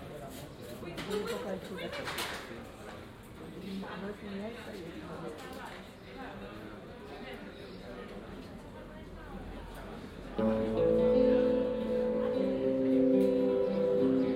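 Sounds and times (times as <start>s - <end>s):
local busker performing in a town plaza: 10.3s - 14.3s.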